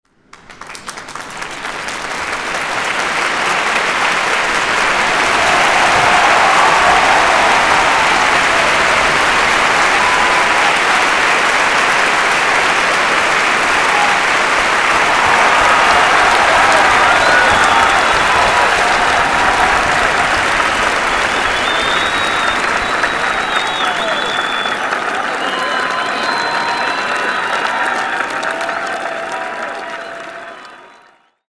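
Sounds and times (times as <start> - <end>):
toilet applause: 0.0 - 31.5.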